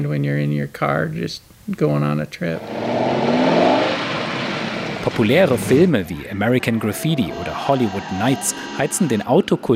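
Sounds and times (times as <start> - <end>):
speech: 0.0 - 3.0, 5.0 - 9.7
car engine revving as the car accelerates away: 2.5 - 9.6.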